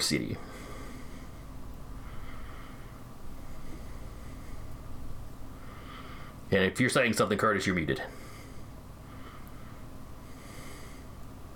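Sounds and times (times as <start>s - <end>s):
speech: 0.0s - 0.6s, 6.5s - 8.2s
person exhaling close to a microphone: 0.4s - 4.9s, 5.5s - 6.5s, 8.0s - 11.2s.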